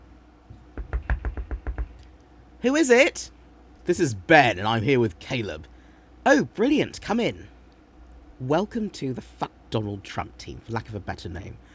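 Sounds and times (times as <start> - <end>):
knocking on a door: 0.7 - 2.0
speech: 2.6 - 7.5, 8.4 - 11.7.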